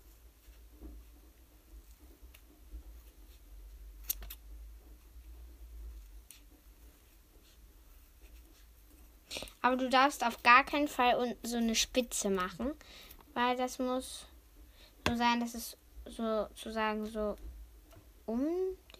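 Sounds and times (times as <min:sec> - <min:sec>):
scissors cutting a heart shape out of a double layer of material: 0:04.0 - 0:04.4
sharp snap: 0:04.0 - 0:04.4
speech: 0:09.6 - 0:14.3, 0:15.0 - 0:17.5, 0:18.3 - 0:18.9.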